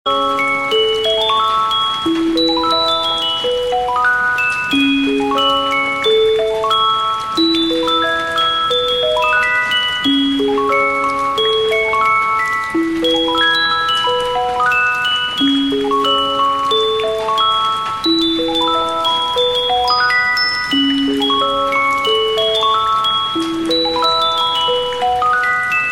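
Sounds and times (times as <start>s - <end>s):
piano instrumental: 0.1s - 25.9s.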